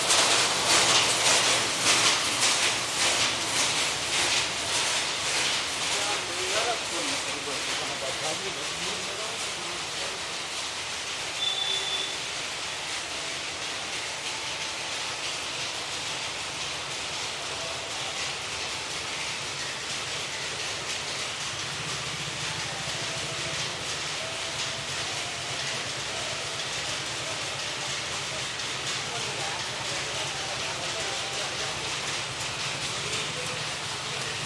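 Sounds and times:
power looms clattering in back-road industries: 0.0 - 34.4
brief high tone: 11.4 - 12.2.

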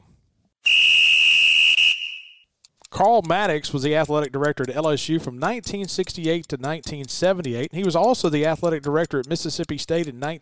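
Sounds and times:
loud shrill whistle blast to start a segment: 0.6 - 2.5
speech: 3.0 - 10.4.

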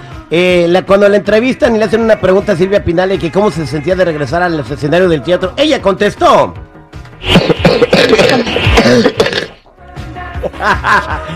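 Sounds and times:
speech: 0.3 - 9.4, 10.5 - 11.3
nervous little cough: 7.3 - 9.6
throaty voiced throat clearing: 7.3 - 9.6
laughter: 10.4 - 11.3.

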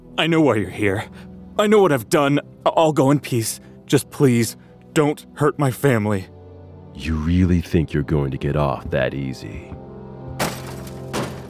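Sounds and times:
speech: 0.2 - 6.4, 7.0 - 9.8
office machines being smashed: 10.4 - 11.4.

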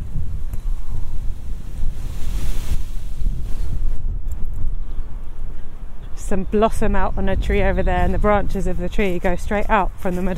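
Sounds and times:
strong wind buffeting the microphone outdoors in a park: 0.0 - 10.3
speech: 6.3 - 10.3.

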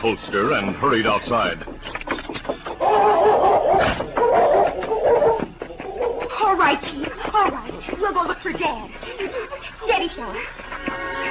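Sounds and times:
speech: 0.0 - 2.3, 6.7 - 11.2
scuffling: 0.4 - 10.5
powerful dog barking and growling while straining against a chain outside a house: 2.8 - 6.4.

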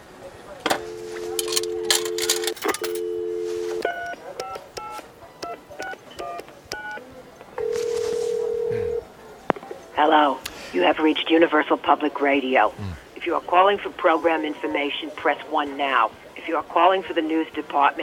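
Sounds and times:
telephone dial tone: 0.7 - 7.0, 7.6 - 9.0
long telephone ringing tone: 0.8 - 4.5, 7.6 - 9.0
beeping keypad tones dialing a number in a mall food court: 0.8 - 7.0
speech: 10.0 - 18.0.

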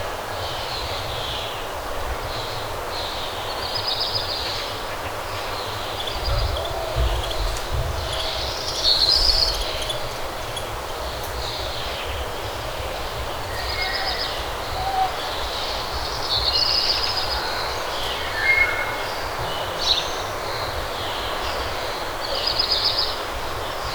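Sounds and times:
soft outdoor hiss: 0.4 - 23.0
morning birdsong chirps and short trills: 3.0 - 21.4.

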